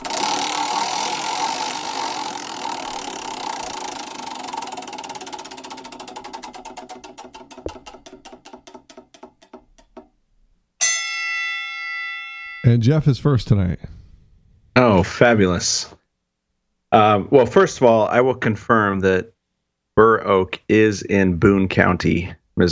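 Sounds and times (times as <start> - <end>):
game wheel spun on a trivia night clicking: 0.0 - 11.1
bright chime: 10.8 - 13.0
speech: 12.7 - 13.9, 15.0 - 16.0, 16.9 - 19.3, 20.0 - 22.6.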